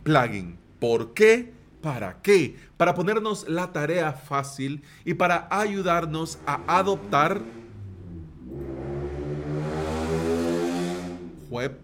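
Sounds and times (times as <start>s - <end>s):
speech: 0.0s - 7.6s, 11.5s - 11.8s
loud motorbike-like engine revving past outside in El Salvador: 5.8s - 11.5s.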